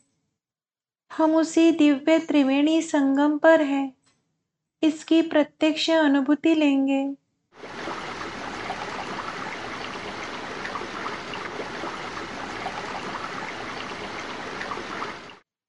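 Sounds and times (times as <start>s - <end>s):
speech: 1.2s - 4.0s, 4.8s - 7.8s
murmuring flow of Ganges river water at the Triveni Sangam in Prayagraj: 7.6s - 15.4s.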